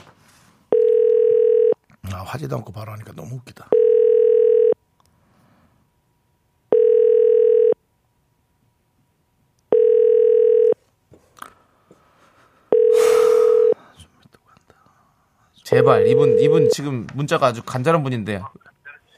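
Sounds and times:
telephone ringback tone of an outgoing call: 0:00.7 - 0:01.8, 0:03.7 - 0:04.8, 0:06.7 - 0:07.8, 0:09.7 - 0:10.8, 0:12.7 - 0:13.8, 0:15.7 - 0:16.8
speech: 0:02.2 - 0:03.8, 0:15.8 - 0:18.8
faint whispering: 0:13.8 - 0:15.6, 0:18.6 - 0:19.1.

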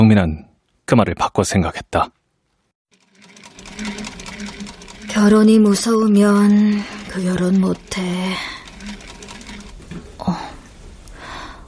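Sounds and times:
speech: 0:00.0 - 0:02.2, 0:05.2 - 0:08.6, 0:10.2 - 0:10.5
sewing machine stitching: 0:02.9 - 0:10.2.

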